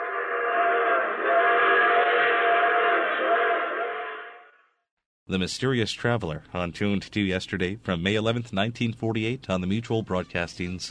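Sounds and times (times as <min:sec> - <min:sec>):
train whistle multi-tone blast: 0:00.0 - 0:04.6
speech: 0:05.3 - 0:10.8.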